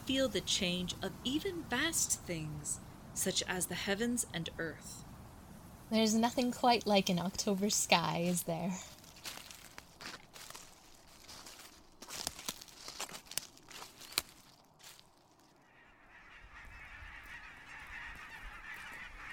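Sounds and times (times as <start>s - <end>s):
speech: 0.1s - 5.1s, 5.9s - 9.0s
wild geese honking while migrating south in autumn: 15.6s - 19.3s.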